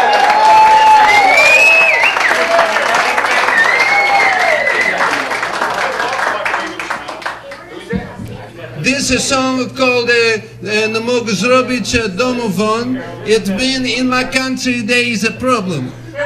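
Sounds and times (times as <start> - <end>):
crowd whooping and hollering cheers: 0.0 - 5.3
crowd applauding: 0.0 - 7.9
speech: 9.1 - 16.0.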